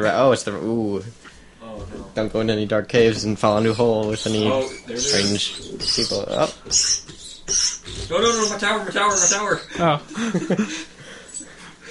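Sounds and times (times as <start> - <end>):
speech: 0.0 - 10.9
dog whimpering with a high-pitched whine: 3.6 - 9.7
dog panting softly: 4.2 - 9.8
laughter: 9.5 - 11.0.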